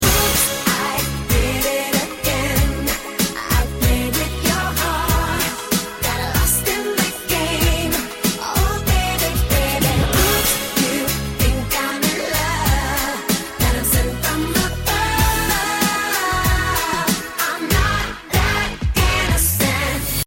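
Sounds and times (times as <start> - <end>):
chorus singing: 0.0 - 20.2.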